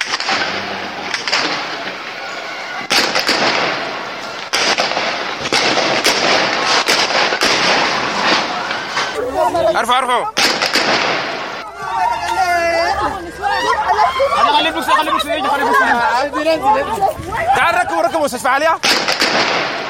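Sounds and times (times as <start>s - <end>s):
gunshots at a street protest: 0.0s - 9.2s, 10.4s - 11.6s, 18.8s - 19.8s
outdoor crowd roaring at a street protest: 0.0s - 18.4s
people shouting at a street protest: 0.0s - 18.8s
speech: 9.8s - 11.2s, 14.4s - 19.8s
laughter: 11.6s - 18.5s.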